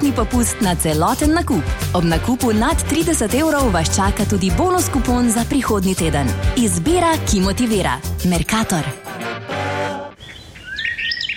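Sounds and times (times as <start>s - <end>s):
speech: 0.1s - 9.3s
birds chirping: 10.2s - 11.3s.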